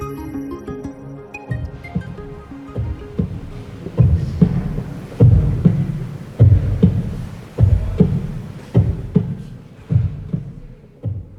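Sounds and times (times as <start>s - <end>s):
recorded human heartbeat: 1.6s - 11.3s.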